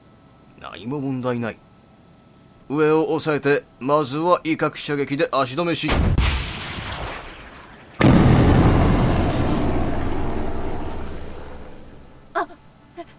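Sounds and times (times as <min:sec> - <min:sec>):
speech: 0:00.6 - 0:01.6, 0:02.7 - 0:06.2
anti-aircraft missile explosion striking an aircraft in a combat game: 0:05.9 - 0:12.3.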